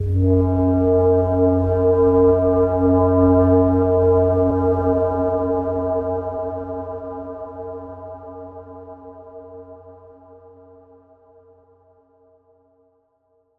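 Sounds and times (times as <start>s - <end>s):
Carpathia ship horn: 0.0s - 8.3s.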